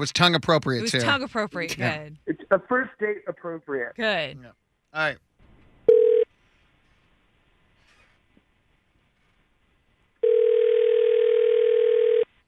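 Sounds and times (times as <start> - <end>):
speech: 0.0 - 5.3
phone line ringing tone on caller's end: 5.9 - 6.3, 10.2 - 12.3.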